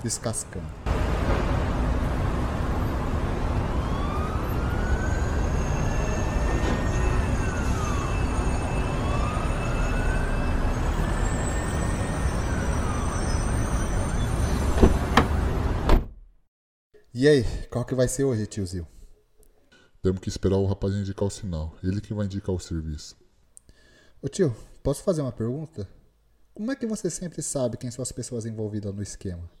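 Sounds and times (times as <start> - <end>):
speech: 0.0 - 1.7, 17.2 - 19.0, 20.0 - 23.2, 24.2 - 26.0, 26.6 - 29.5
heavy city traffic roar on Avenida Paulista: 0.0 - 16.0
siren wailing: 2.3 - 14.7.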